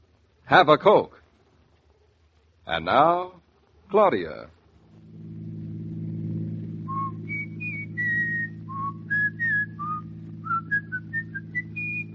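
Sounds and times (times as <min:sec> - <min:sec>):
speech: 0:00.5 - 0:01.2, 0:02.7 - 0:04.6
steady low hum: 0:04.6 - 0:12.1
person whistling a lively tune: 0:06.9 - 0:12.1.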